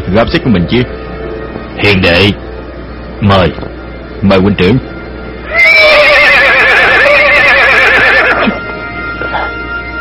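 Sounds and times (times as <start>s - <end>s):
speech: 0.1s - 1.0s, 1.8s - 2.5s, 3.2s - 5.0s
war horse whinnying: 5.4s - 8.6s.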